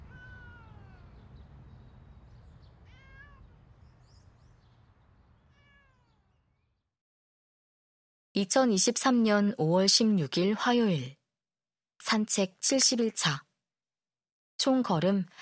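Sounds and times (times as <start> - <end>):
cat meowing outdoors with plaintive calls: 0.0 - 1.3, 2.8 - 3.6, 5.5 - 6.3
speech: 8.4 - 11.2, 12.0 - 13.5, 14.6 - 15.4.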